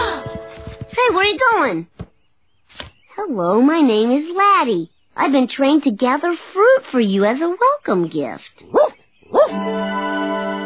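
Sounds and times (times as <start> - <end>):
speech: 1.0 - 1.9, 3.2 - 10.1
dog barking: 8.6 - 9.6.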